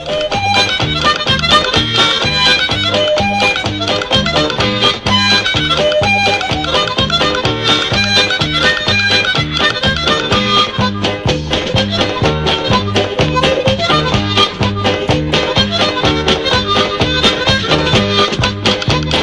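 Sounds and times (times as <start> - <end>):
harmonica playing a Québécois folk tune from a studio album: 0.0 - 19.2.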